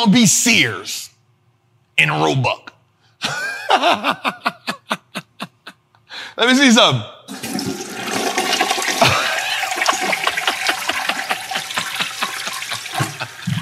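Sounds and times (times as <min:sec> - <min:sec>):
speech: 0:00.0 - 0:01.0, 0:02.0 - 0:04.5, 0:06.4 - 0:07.4
laughter: 0:03.2 - 0:05.8, 0:08.8 - 0:13.6
toilet flushing: 0:07.3 - 0:13.6.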